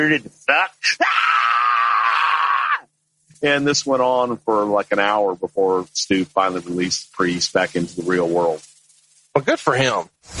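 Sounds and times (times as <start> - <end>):
speech: 0.0 - 1.3, 3.4 - 8.7, 9.3 - 10.3
man screaming: 0.5 - 2.9.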